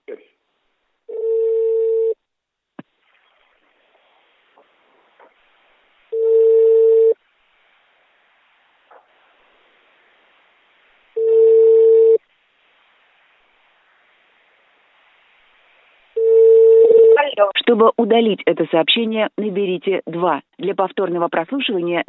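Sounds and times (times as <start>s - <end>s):
telephone ringback tone: 1.1s - 2.2s, 6.2s - 7.2s, 11.2s - 12.2s, 16.2s - 17.2s
speech: 17.4s - 22.0s.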